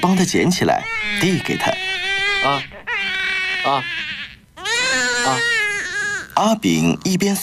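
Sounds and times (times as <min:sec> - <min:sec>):
speech: 0:00.0 - 0:02.8, 0:03.6 - 0:04.2, 0:06.4 - 0:07.4
newborn baby crying in wavering wails: 0:00.0 - 0:06.4.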